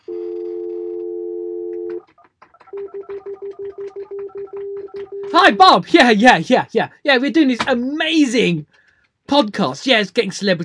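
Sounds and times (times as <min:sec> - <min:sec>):
telephone dial tone: 0:00.0 - 0:05.4
speech: 0:05.3 - 0:10.6.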